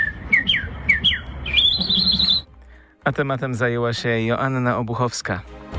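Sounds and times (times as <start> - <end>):
person whistling bird-like trills and chirps at a bird-imitation contest: 0.0 - 2.5
speech: 3.1 - 5.6.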